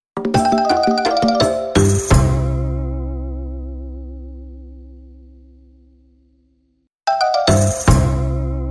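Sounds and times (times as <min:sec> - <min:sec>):
marimba jingle: 0:00.2 - 0:02.3, 0:07.1 - 0:08.6.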